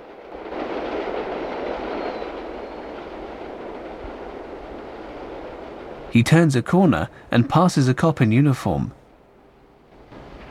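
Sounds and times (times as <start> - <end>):
train wheels clattering on rails: 0.0 - 6.2, 9.9 - 10.5
elevated train rumbling past overhead: 0.0 - 10.5
speech: 6.1 - 9.0.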